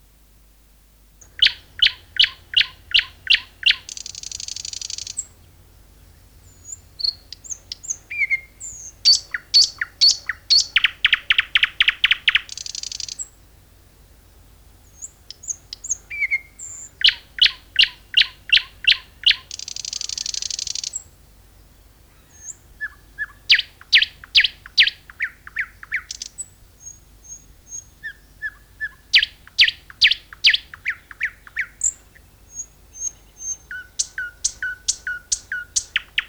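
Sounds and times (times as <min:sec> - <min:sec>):
garden warbler song: 0:00.0 - 0:36.2.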